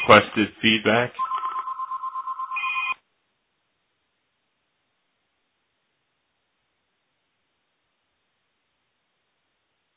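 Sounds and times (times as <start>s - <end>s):
speech: 0.1s - 1.2s
telephone ringing with warbling electronic tone: 1.2s - 3.0s.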